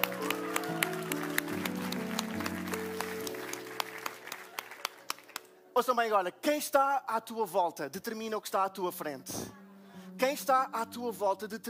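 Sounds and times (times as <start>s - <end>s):
audience applause: 0.0s - 5.6s
speech: 5.8s - 9.6s, 10.2s - 11.6s.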